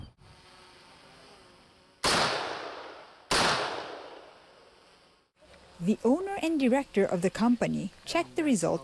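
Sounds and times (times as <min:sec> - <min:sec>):
assault rifle shots striking armour material in a ballistic test: 0:02.0 - 0:04.2
speech: 0:05.8 - 0:08.8.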